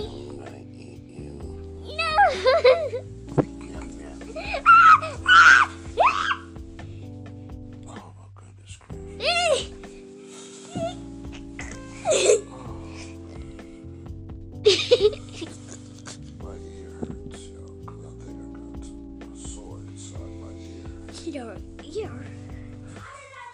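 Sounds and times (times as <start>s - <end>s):
person screaming and yelping while playing a video game: 1.9s - 2.8s, 4.3s - 6.5s, 9.2s - 9.7s
laughter: 2.1s - 3.0s, 12.0s - 12.6s, 14.6s - 16.3s.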